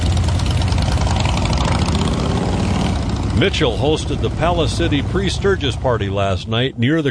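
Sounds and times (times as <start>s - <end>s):
several motorcycle engines idling: 0.0s - 7.0s
speech: 3.4s - 7.0s.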